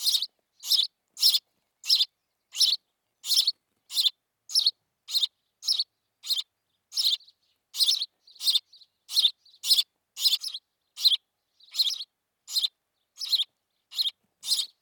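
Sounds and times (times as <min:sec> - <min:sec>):
house sparrow chirping: 0:00.0 - 0:14.8.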